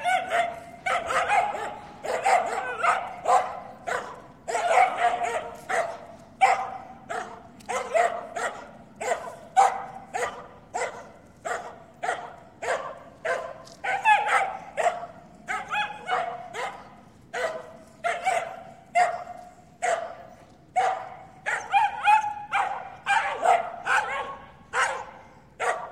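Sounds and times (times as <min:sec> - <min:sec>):
terrier barking: 0:00.0 - 0:25.9.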